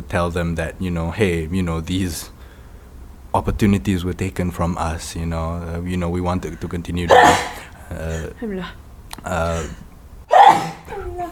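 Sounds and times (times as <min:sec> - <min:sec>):
speech: 0:00.1 - 0:02.4, 0:03.3 - 0:09.8
soft breathy vocal sound: 0:06.4 - 0:09.8
sneeze: 0:07.1 - 0:08.2, 0:09.5 - 0:11.0.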